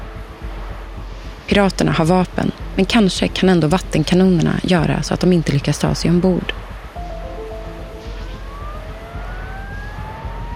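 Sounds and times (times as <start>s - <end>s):
steady low rumble of ship engine noise: 0.0s - 10.5s
speech: 1.5s - 6.6s
ship's emergency siren wailing during a pirate attack: 7.0s - 10.5s.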